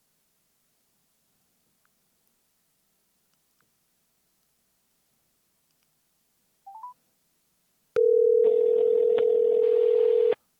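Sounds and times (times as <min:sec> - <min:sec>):
click: 0:05.7 - 0:05.9
phone keypad beeps: 0:08.0 - 0:10.4
steady telephone tone: 0:08.0 - 0:10.4.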